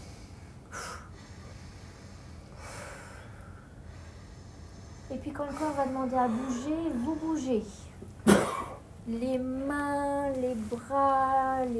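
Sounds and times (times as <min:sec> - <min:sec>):
sharp brief inhale to activate the breathing after a relaxation practice: 0:00.0 - 0:05.8
longer breathy exhale after a relaxation practice: 0:00.0 - 0:07.4
quiet hiss: 0:00.0 - 0:11.7
speech: 0:05.1 - 0:07.9, 0:09.1 - 0:11.7.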